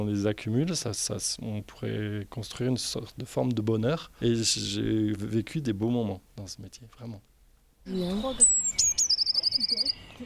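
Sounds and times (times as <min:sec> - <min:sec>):
speech: 0:00.0 - 0:08.9, 0:09.6 - 0:10.2
blue tit singing: 0:07.9 - 0:10.2.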